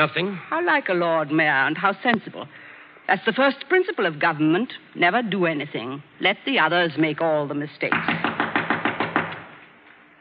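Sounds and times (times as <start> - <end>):
speech: 0.0 - 8.3
firm knocks on a wooden door: 7.9 - 9.6.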